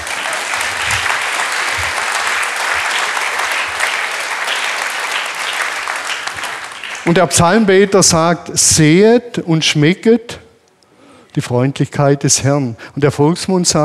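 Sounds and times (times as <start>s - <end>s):
audience applause: 0.0s - 7.4s
speech: 7.1s - 10.4s, 11.4s - 13.8s.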